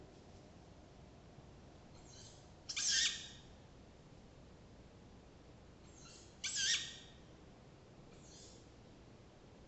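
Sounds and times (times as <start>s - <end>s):
tawny owl rasping screechy calls: 2.0s - 3.5s, 5.9s - 7.2s, 8.2s - 8.6s.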